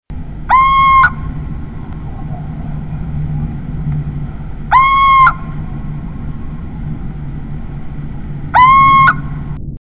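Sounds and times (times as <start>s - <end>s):
Little Owl calling: 0.4s - 3.3s, 4.0s - 6.6s, 8.4s - 9.5s.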